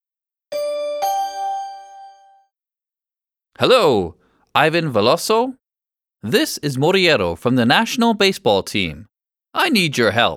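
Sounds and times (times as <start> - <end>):
phone ringtone with two bright bell-like chime notes: 0.5 - 2.5
speech: 3.6 - 5.6, 6.2 - 10.3.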